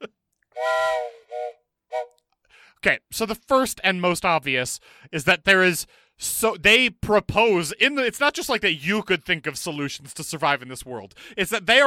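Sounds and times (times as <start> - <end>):
shrill whistle blasts and toots: 0.6 - 2.1
speech: 2.8 - 11.8.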